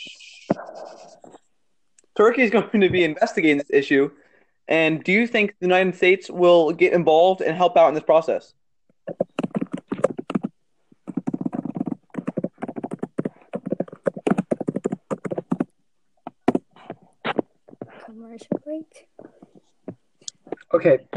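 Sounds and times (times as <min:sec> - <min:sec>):
speech: 0:02.2 - 0:09.4, 0:20.8 - 0:21.1
typing on a computer keyboard: 0:09.1 - 0:15.7.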